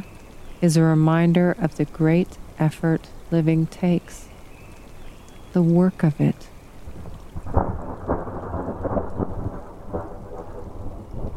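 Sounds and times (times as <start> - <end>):
rain hissing: 0.0 - 11.3
speech: 0.6 - 4.3, 5.5 - 6.5
rolling thunder: 6.8 - 11.3.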